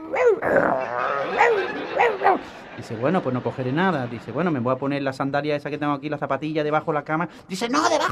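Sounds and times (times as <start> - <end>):
person growling and barking imitating a rabid dog: 0.0 - 2.4
speech: 0.1 - 0.9, 1.5 - 8.0
laughter: 0.5 - 5.1.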